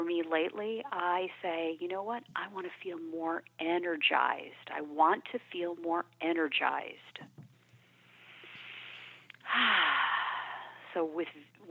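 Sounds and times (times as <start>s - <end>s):
speech: 0.2s - 7.4s, 9.5s - 10.1s, 10.9s - 11.6s
deep breath in during an energizing breathing exercise: 8.0s - 10.8s.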